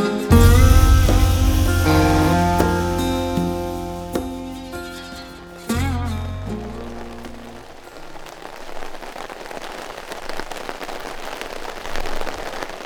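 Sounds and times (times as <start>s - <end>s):
heavy cold rain pouring on a tent camp in Pennsylvania: 0.2s - 12.8s
brief low tonal hum: 0.3s - 6.7s.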